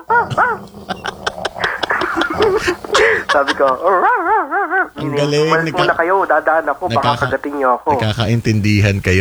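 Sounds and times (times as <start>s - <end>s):
person imitating a dog barking: 0.0s - 6.2s
laughter: 0.0s - 9.1s
speech: 2.6s - 9.1s.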